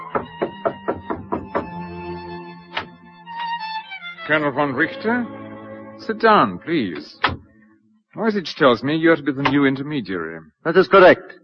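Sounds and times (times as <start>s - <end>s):
firm knocking on a door: 0.0s - 1.8s, 7.2s - 7.4s
speech: 4.3s - 5.4s, 6.0s - 7.4s, 8.2s - 11.3s.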